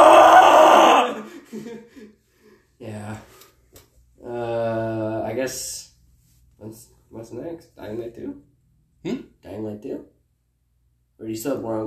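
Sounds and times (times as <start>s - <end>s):
person grunting and groaning: 0.0s - 1.4s
person screaming in frustration: 0.0s - 1.4s
speech: 7.7s - 10.2s, 11.2s - 11.8s.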